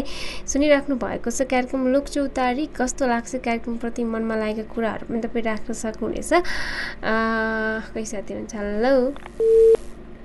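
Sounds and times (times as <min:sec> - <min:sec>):
speech: 0:00.0 - 0:09.9
telephone busy tone beep as a caller's line drops on a radio call-in: 0:09.4 - 0:09.8.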